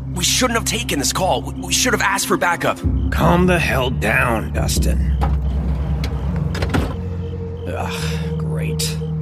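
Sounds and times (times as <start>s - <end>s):
speech: 0.2s - 5.4s, 7.7s - 8.2s
steady low rumble of a vehicle interior: 4.6s - 7.6s
car driver's side door opening: 5.1s - 7.2s.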